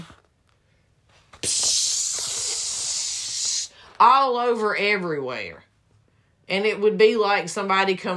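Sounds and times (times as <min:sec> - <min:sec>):
voice imitating an aerosol air freshener spraying: 0:01.4 - 0:03.7
speech: 0:04.0 - 0:05.7, 0:06.5 - 0:08.1.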